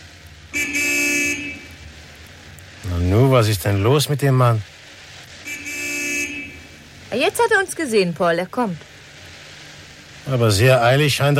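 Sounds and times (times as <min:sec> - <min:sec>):
quiet road background: 0:00.0 - 0:11.3
car horn honk: 0:00.5 - 0:01.8, 0:05.4 - 0:06.8
speech: 0:03.0 - 0:04.7, 0:07.1 - 0:08.9, 0:10.3 - 0:11.3.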